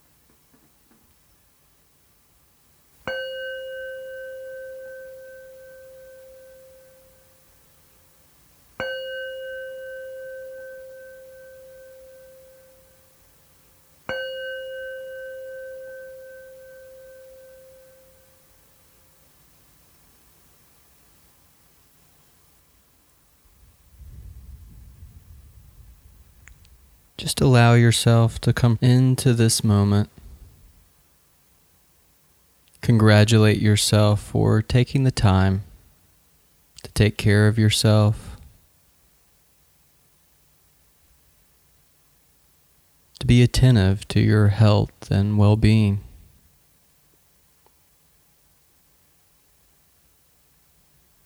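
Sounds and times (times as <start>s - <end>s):
meditation bell ringing: 3.0s - 21.0s
speech: 27.2s - 30.2s, 32.8s - 35.7s, 37.0s - 38.3s, 43.3s - 46.1s.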